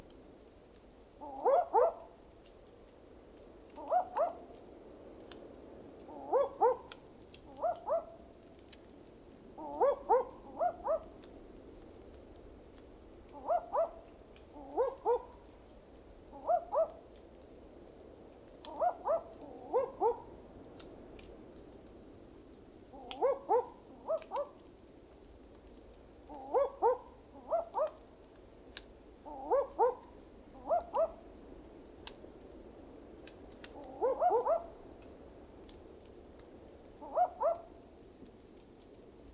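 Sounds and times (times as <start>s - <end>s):
Ninox connivens peninsularis barking owl calling: 1.2s - 2.1s, 3.7s - 4.4s, 6.1s - 8.2s, 9.6s - 11.2s, 13.3s - 15.5s, 16.3s - 17.0s, 18.7s - 20.3s, 22.9s - 24.6s, 26.3s - 28.0s, 29.2s - 31.2s, 33.7s - 34.8s, 37.0s - 37.7s.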